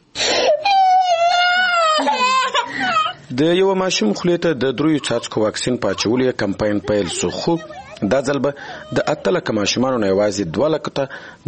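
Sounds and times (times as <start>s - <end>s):
young child crying: 0.3s - 3.2s, 5.8s - 9.4s
laughter: 1.8s - 3.3s, 4.5s - 9.5s
speech: 3.3s - 11.4s.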